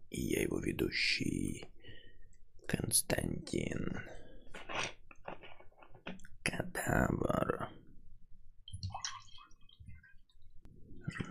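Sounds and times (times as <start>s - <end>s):
speech: 0.2s - 1.7s, 2.7s - 4.2s, 6.9s - 7.5s
liquor pouring into a shot glass: 8.7s - 10.2s.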